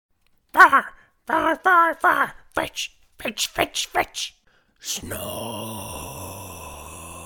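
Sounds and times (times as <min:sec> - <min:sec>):
speech: 0:00.6 - 0:06.0
person imitating a snore: 0:05.0 - 0:07.2.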